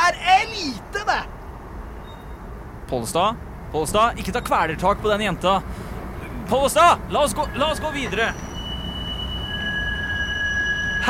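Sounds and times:
tram rumbling on rails: 0:00.0 - 0:11.0
metallic squeals of tram wheels: 0:02.0 - 0:02.5, 0:06.2 - 0:11.0
speech: 0:02.9 - 0:05.8, 0:06.5 - 0:08.4.

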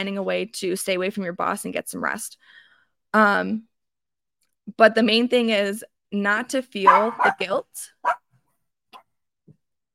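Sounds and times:
speech: 0:00.0 - 0:03.7, 0:04.7 - 0:08.2
small dog barking in a condo: 0:06.9 - 0:07.4, 0:08.0 - 0:08.2.

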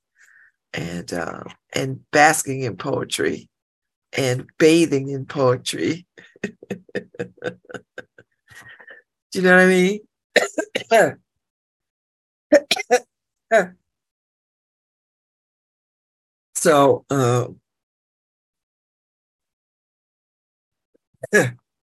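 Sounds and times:
speech: 0:00.7 - 0:03.5, 0:04.1 - 0:07.8, 0:09.3 - 0:11.2, 0:12.5 - 0:13.8, 0:16.6 - 0:17.6, 0:21.3 - 0:21.6
person clearing throat with a tickle in the throat: 0:06.2 - 0:08.0, 0:10.4 - 0:11.1, 0:12.6 - 0:13.0
laughter: 0:06.2 - 0:08.9.

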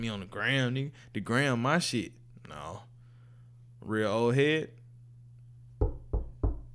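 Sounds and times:
speech: 0:00.0 - 0:02.9, 0:03.8 - 0:04.8
firm knocks on a door: 0:05.8 - 0:06.7.

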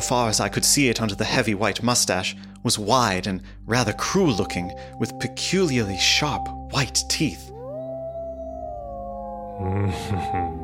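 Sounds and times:
speech: 0:00.0 - 0:07.5, 0:09.6 - 0:10.6
wolves howling at night: 0:07.5 - 0:10.0.

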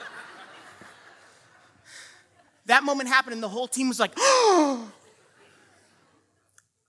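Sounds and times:
laughter: 0:00.0 - 0:02.6
speech: 0:02.7 - 0:05.0
person imitating a sharp gasp: 0:04.2 - 0:05.0.

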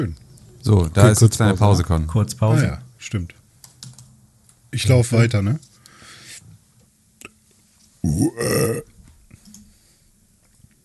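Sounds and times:
speech: 0:00.0 - 0:03.4, 0:04.7 - 0:05.7, 0:08.0 - 0:08.9
low noise: 0:00.0 - 0:10.8
loud guttural burp: 0:08.0 - 0:08.9.

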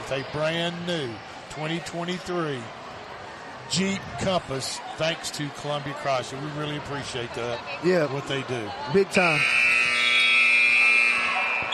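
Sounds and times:
faint basketball game crowd noise: 0:00.0 - 0:11.7
speech: 0:00.1 - 0:02.8, 0:03.7 - 0:09.8
high school boys' basketball game buzzer blaring: 0:09.2 - 0:11.7.

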